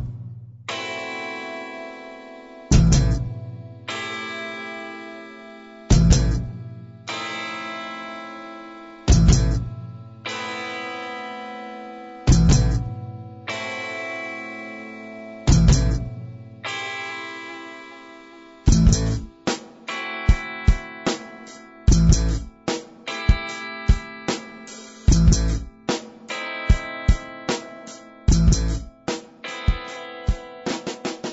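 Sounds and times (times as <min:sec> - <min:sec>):
band playing loud instrumental passage led by effects-laden electric guitar: 0:00.7 - 0:31.3.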